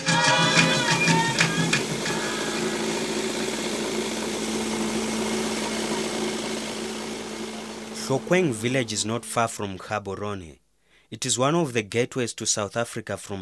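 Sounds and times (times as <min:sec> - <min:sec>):
sorghum dehuller and hammer mill running: 0:00.1 - 0:09.3
speech: 0:08.2 - 0:13.3.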